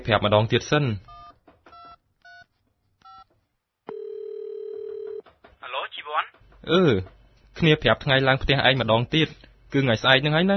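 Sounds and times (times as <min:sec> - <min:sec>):
speech: 0:00.0 - 0:01.1, 0:06.6 - 0:10.5
telephone keypad dialing beeps while placing a call: 0:03.9 - 0:05.2.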